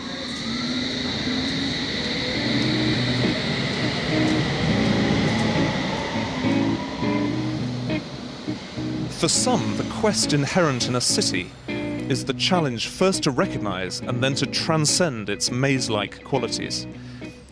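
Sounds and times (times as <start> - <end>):
high electric whine from train motors: 0.0 - 12.1
London Underground train rumbling beside a platform at Barbican station: 0.0 - 16.7
speech: 9.2 - 17.2.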